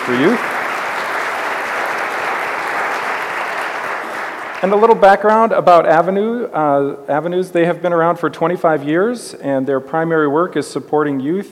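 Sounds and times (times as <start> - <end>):
speech: 0.0 - 0.5, 4.6 - 11.5
audience applause at a morning gathering welcoming a guest: 0.0 - 5.0.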